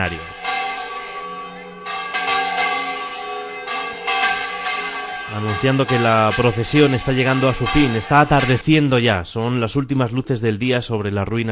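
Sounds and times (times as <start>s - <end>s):
speech: 0.0s - 0.3s, 5.3s - 11.5s
church bell ringing a festive peal in Moya Spain: 0.0s - 9.2s.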